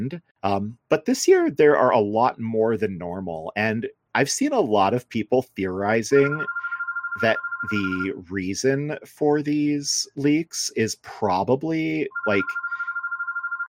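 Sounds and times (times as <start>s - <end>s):
speech: 0.0s - 6.6s, 7.2s - 12.6s
landline telephone ringing with a steady trilling tone: 6.2s - 8.1s, 12.1s - 13.7s.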